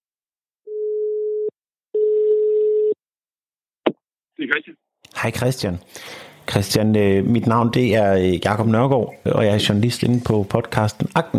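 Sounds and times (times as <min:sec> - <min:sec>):
ringing tone of an outgoing telephone call: 0:00.7 - 0:03.0
speech: 0:04.5 - 0:11.3.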